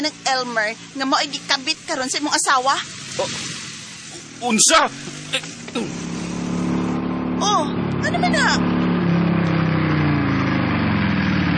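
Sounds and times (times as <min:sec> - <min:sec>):
speech: 0:00.0 - 0:03.6, 0:04.4 - 0:06.1, 0:07.4 - 0:08.7
motorcycle engine idling and revving: 0:00.0 - 0:11.5.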